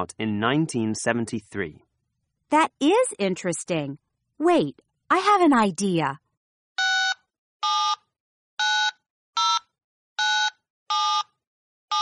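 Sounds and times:
speech: 0.0 - 1.9, 2.5 - 6.2
cell phone ringing with short electronic tone bursts: 6.8 - 12.0.

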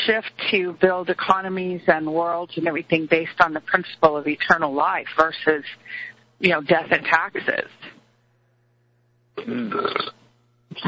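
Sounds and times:
speech: 0.0 - 8.0, 9.4 - 10.8
low steady hum: 0.0 - 10.8
loud drawn-out burp: 9.4 - 10.8.

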